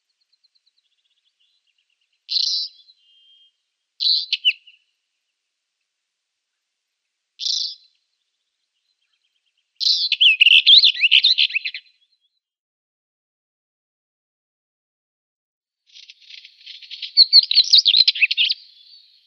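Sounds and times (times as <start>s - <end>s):
Northern Wheatear singing scratchy notes and warbled phrase: 1.0s - 4.8s, 7.4s - 7.9s, 9.0s - 11.9s, 15.9s - 19.2s.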